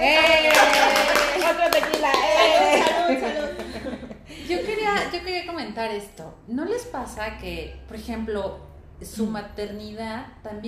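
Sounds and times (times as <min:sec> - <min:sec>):
small group clapping hands: 0:00.0 - 0:04.1
people laughing: 0:02.1 - 0:05.1
speech: 0:05.0 - 0:10.6.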